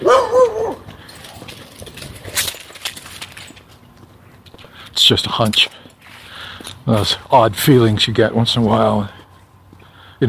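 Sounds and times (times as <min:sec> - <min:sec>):
dogs barking and yipping: 0:00.0 - 0:01.4
outdoor noise on a cold day: 0:00.0 - 0:10.2
speech: 0:05.0 - 0:05.8, 0:06.9 - 0:09.2.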